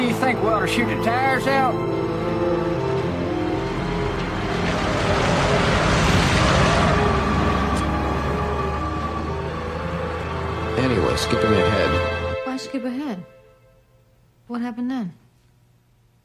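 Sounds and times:
speech: 0.2s - 2.8s, 10.8s - 13.4s, 14.5s - 15.2s
runaway RV engine and road noise while driving out of control: 3.0s - 11.2s.

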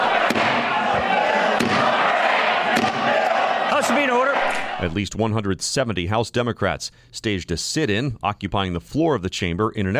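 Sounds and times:
roar of shouting voices filling a large chamber: 0.0s - 5.0s
gavel banging: 0.2s - 3.4s
speech: 4.8s - 9.9s.

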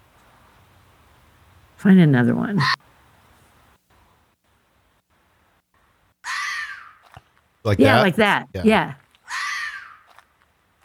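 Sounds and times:
speech: 1.8s - 2.9s, 7.6s - 9.0s
red fox screaming: 2.6s - 2.8s, 6.2s - 7.2s, 9.2s - 10.2s.

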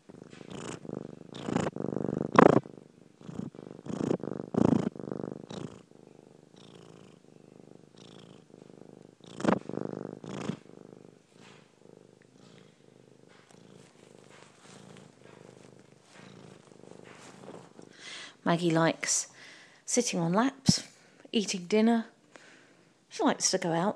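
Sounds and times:
black and white mixed-breed female cat purring: 0.0s - 23.9s
speech: 18.5s - 19.3s, 19.9s - 22.1s, 23.2s - 23.9s.

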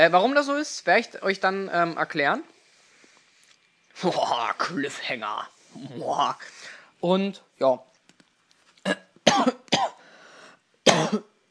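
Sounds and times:
speech: 0.0s - 2.6s, 4.0s - 7.9s, 8.8s - 9.6s, 11.1s - 11.3s
person coughing: 8.9s - 10.0s, 10.8s - 11.4s.

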